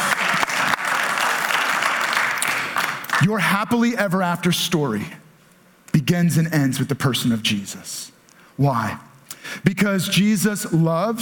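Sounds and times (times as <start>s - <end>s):
crowd applauding: 0.0s - 3.3s
speech: 3.2s - 5.2s, 6.0s - 11.2s.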